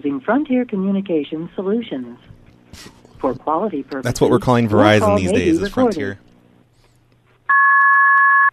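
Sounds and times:
speech: 0.1s - 6.2s
telephone line two-note electronic tone during a call: 7.5s - 8.5s.

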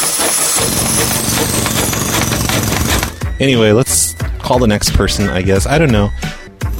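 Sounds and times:
loud steady jackhammer pounding in rapid bursts: 0.0s - 3.3s
speech: 3.4s - 6.4s.

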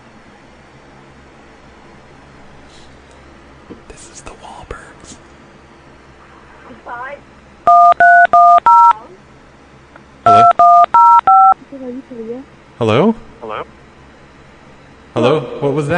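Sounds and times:
soft whispering: 3.9s - 5.2s
speech: 6.8s - 7.8s, 11.8s - 13.2s, 15.6s - 15.9s
telephone touch tones being dialed: 7.7s - 9.0s, 10.3s - 11.6s.

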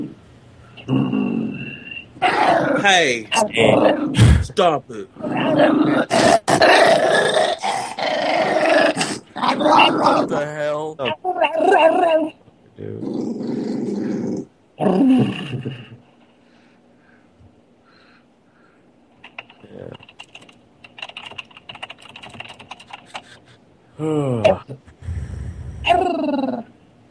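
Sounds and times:
speech: 0.8s - 1.2s, 2.8s - 8.2s, 9.6s - 14.2s
dog growling: 0.8s - 4.4s, 5.2s - 16.0s, 25.0s - 26.7s
keyboard typing: 19.2s - 23.4s.

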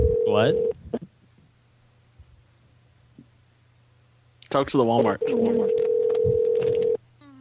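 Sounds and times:
steady clear telephone tone: 0.0s - 0.7s, 5.2s - 7.0s
speech: 0.4s - 0.7s, 4.5s - 6.8s.

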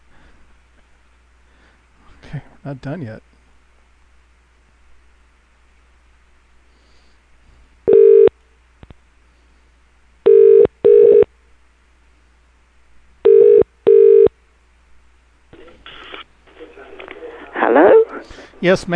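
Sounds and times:
speech: 2.3s - 3.3s, 18.6s - 18.9s
telephone ringing through a handset: 7.9s - 8.3s, 10.3s - 11.3s, 13.3s - 14.3s
crackly voice or line noise: 15.5s - 18.9s.

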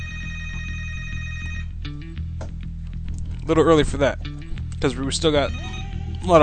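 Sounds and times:
electronic telephone ringing on a television call-in line: 0.0s - 1.8s, 5.4s - 6.2s
pulsing low hum: 1.5s - 6.2s
speech: 3.5s - 6.4s.

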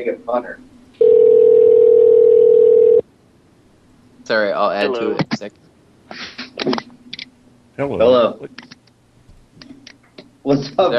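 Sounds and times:
speech: 0.0s - 0.7s, 4.3s - 6.8s, 7.8s - 8.7s, 10.4s - 10.9s
telephone ringing with a steady electronic tone: 1.0s - 3.0s.

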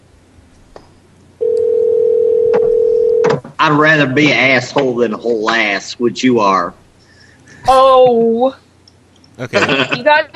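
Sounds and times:
telephone ringing tone on an outgoing call: 1.4s - 3.3s
speech: 3.6s - 6.8s, 7.7s - 8.6s, 9.4s - 10.3s
laughter: 9.4s - 10.3s.

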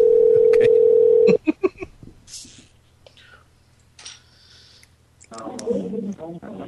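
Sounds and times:
telephone dial tone: 0.0s - 1.3s.

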